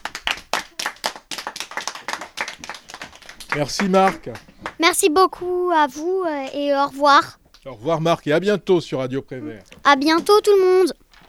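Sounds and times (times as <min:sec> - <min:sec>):
small group of children applauding: 0:00.0 - 0:04.8
speech: 0:03.6 - 0:11.0.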